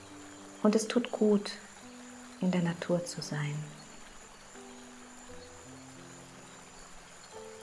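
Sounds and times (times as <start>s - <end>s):
gentle babble of stream water: 0.0s - 7.6s
low sustained musical tones: 0.0s - 7.6s
speech: 0.6s - 1.7s, 2.4s - 3.8s.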